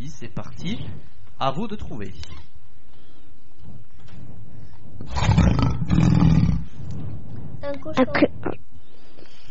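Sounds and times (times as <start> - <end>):
speech: 0.1 - 2.5, 5.0 - 6.1, 7.6 - 8.7
lion roaring: 5.1 - 6.7.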